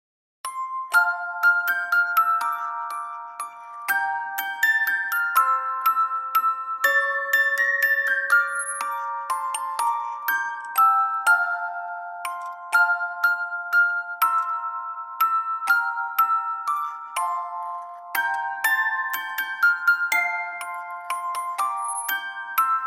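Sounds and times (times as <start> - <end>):
music box playing a Christmas carol in F major: 0.4 - 22.8.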